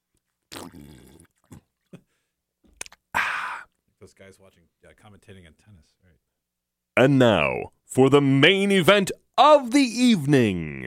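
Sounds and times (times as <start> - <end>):
person sipping water: 0.1 - 2.0, 2.7 - 3.8
speech: 4.1 - 6.4, 7.0 - 10.8.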